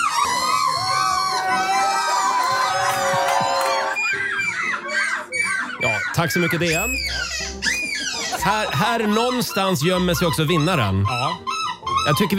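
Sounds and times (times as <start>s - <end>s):
crowd cheering and shouting: 0.2s - 4.2s
person imitating seagull squawking calls at a gull-imitation championship: 5.4s - 12.3s
speech: 6.2s - 7.6s, 8.5s - 11.5s, 12.1s - 12.3s.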